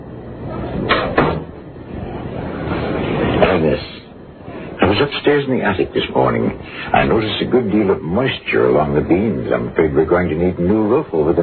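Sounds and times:
quiet room hum: 0:00.0 - 0:11.4
door swinging shut with wooden knocks: 0:00.5 - 0:01.6
speech: 0:05.0 - 0:11.4.

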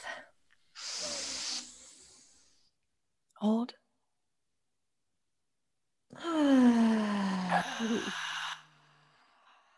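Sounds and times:
softer hissing breath: 0:00.7 - 0:02.7, 0:06.9 - 0:09.7
several people drawing in a deep breath together: 0:00.8 - 0:02.6, 0:06.8 - 0:09.7
speech: 0:03.4 - 0:03.8.

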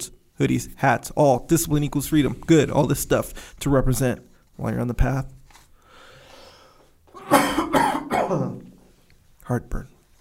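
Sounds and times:
speech: 0:00.0 - 0:05.4, 0:08.3 - 0:08.7, 0:09.5 - 0:10.0
harsh chesty coughs: 0:07.1 - 0:08.7.

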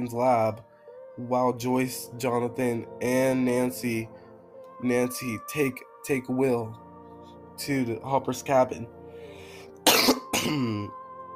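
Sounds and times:
speech: 0:00.0 - 0:04.2, 0:04.8 - 0:06.8, 0:07.6 - 0:09.0, 0:10.3 - 0:11.0
harsh coughs: 0:09.8 - 0:10.9.

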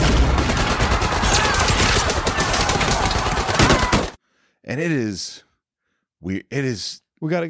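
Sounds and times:
machine gun fire from a violent film scene: 0:00.0 - 0:04.2
speech: 0:04.8 - 0:05.5, 0:06.2 - 0:07.4.

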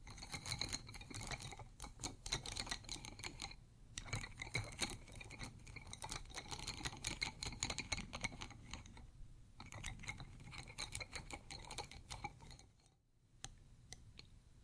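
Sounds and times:
pencils and metal studs clattering against ceramic: 0:00.0 - 0:13.0.

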